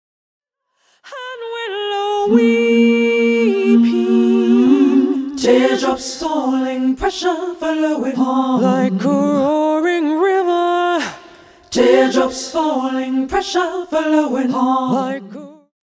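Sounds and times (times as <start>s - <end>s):
short a cappella singing: 1.0s - 15.8s.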